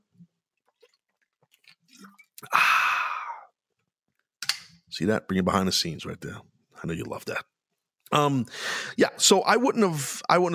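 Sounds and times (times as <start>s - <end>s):
person sipping water: 0.4s - 3.6s
breathy satisfied exhale: 2.4s - 3.5s, 8.5s - 9.0s
speech: 5.0s - 7.5s, 8.1s - 10.5s.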